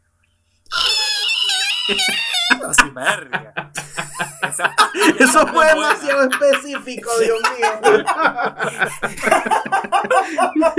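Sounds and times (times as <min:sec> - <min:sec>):
voice imitating a taxi's screeching tires: 0:00.7 - 0:08.1
laughter: 0:00.7 - 0:10.7
speech: 0:01.9 - 0:03.6, 0:04.5 - 0:10.7.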